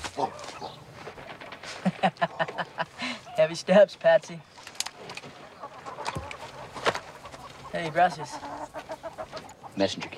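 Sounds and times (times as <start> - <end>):
chickens clucking inside a chicken coop: 0.0 - 10.1
laughter: 1.6 - 3.4
speech: 2.0 - 2.6, 3.4 - 4.5, 7.8 - 9.0, 9.8 - 10.1.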